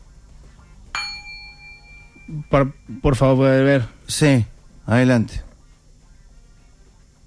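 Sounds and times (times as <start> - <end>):
gong struck with a sharp metallic clang: 1.0 - 2.9
speech: 2.3 - 5.5.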